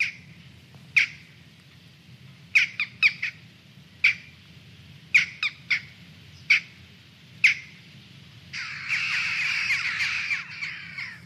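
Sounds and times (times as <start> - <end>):
dense chattering of many jackdaws together: 0.0 - 1.4, 2.5 - 4.4, 5.1 - 7.9, 8.5 - 11.2
western jackdaw calls: 0.0 - 1.4, 2.5 - 4.4, 5.1 - 6.8, 7.4 - 7.9, 8.5 - 11.2
low rumble: 0.0 - 11.2.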